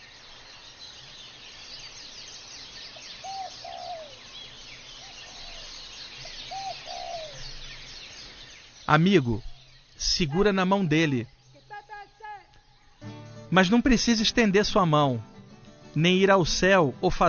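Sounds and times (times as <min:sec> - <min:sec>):
chorus of small birds chirping and twittering: 0:00.0 - 0:17.2
speech: 0:08.9 - 0:11.4, 0:13.5 - 0:15.3, 0:16.0 - 0:17.2.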